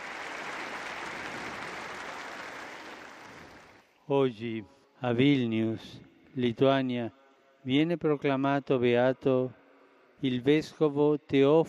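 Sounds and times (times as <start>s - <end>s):
sustained applause from a large audience: 0.0s - 3.8s
speech: 4.1s - 9.6s, 10.2s - 11.6s.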